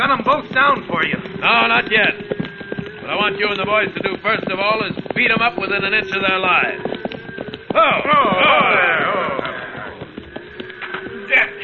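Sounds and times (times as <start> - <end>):
speech: 0.0 - 2.4, 3.1 - 6.9, 7.7 - 9.2, 11.3 - 11.6
horses' hooves clip-clopping: 0.0 - 11.6.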